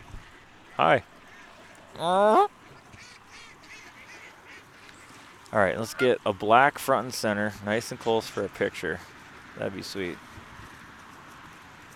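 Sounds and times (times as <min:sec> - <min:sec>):
speech: 0:00.8 - 0:01.1, 0:02.0 - 0:02.5, 0:05.5 - 0:10.3
duck quacking: 0:02.1 - 0:04.9.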